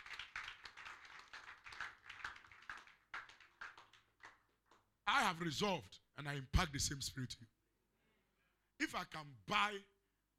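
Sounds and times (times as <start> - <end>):
audience clapping hands in rhythm: 0.0 - 5.0
speech: 5.1 - 7.6, 8.8 - 9.9.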